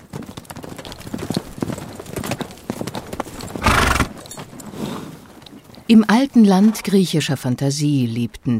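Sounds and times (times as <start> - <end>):
horse hooves clip-clopping: 0.0 - 7.2
horse whinnying: 3.6 - 4.2
speech: 5.9 - 8.5.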